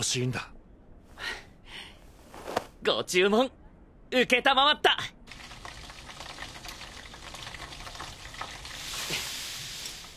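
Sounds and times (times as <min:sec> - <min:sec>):
speech: 0:00.0 - 0:00.6, 0:02.8 - 0:05.0
rabbit horn meat karaage deep-frying in hot oil: 0:05.3 - 0:10.1.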